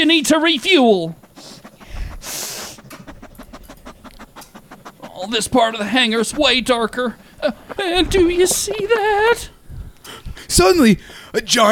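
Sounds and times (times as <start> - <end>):
speech: 0.0 - 1.5, 5.2 - 9.6, 10.5 - 11.7
rapid sniffing through the nose: 0.0 - 11.7.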